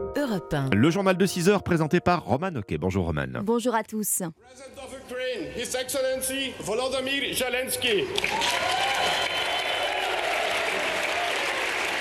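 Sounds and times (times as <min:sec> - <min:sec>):
speech: 0:00.2 - 0:08.9
ovation by European parliamentarians in Brussels welcoming a president: 0:08.1 - 0:12.0.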